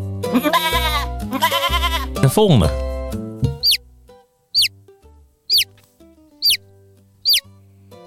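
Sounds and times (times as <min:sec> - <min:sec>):
lamb bleating: 0:00.2 - 0:02.3
speech: 0:00.3 - 0:01.1, 0:02.3 - 0:02.8
chick peeping: 0:05.5 - 0:05.7, 0:07.2 - 0:07.4.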